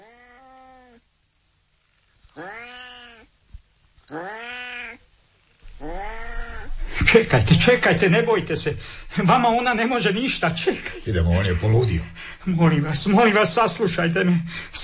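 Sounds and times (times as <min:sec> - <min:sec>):
cat meowing: 0:00.0 - 0:01.0, 0:02.3 - 0:03.3, 0:04.0 - 0:05.0, 0:05.7 - 0:07.0
speech: 0:04.1 - 0:04.3, 0:07.1 - 0:14.8.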